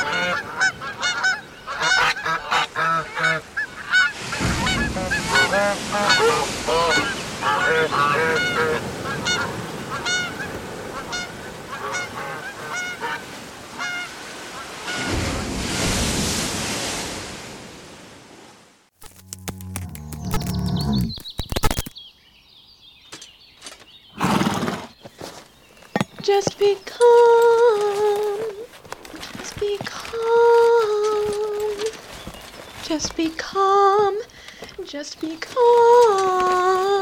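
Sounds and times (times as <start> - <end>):
flock of geese honking: 0.0 - 15.2
wind: 0.0 - 36.9
rushing wash of surf: 4.0 - 18.7.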